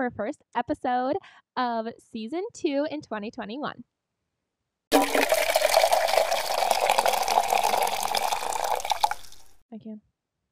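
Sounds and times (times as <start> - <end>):
speech: 0.0 - 3.9, 9.7 - 10.1
coffee pouring into a cup: 4.9 - 9.6.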